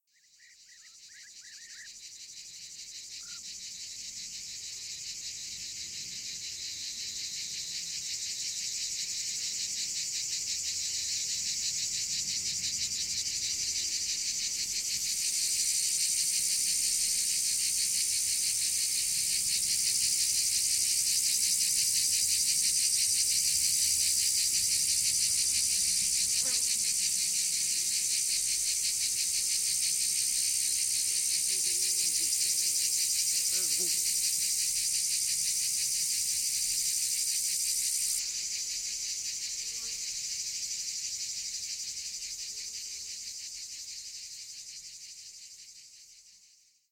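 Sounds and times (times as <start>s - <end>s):
chorus of cicadas: 0.1s - 46.9s.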